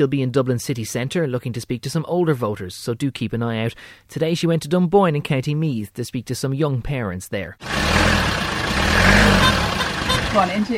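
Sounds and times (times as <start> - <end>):
speech: 0.0 - 8.3, 10.3 - 10.7
taxi engine idling in Dunboyne County Meath: 7.6 - 10.7.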